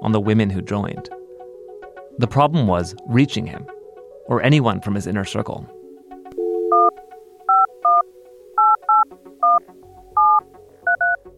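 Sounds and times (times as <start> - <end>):
speech: 0.0 - 1.2, 2.2 - 5.8
phone keypad touch-tone beeps dialing a cell phone: 6.4 - 6.9, 7.5 - 8.0, 8.6 - 9.6, 10.2 - 11.2.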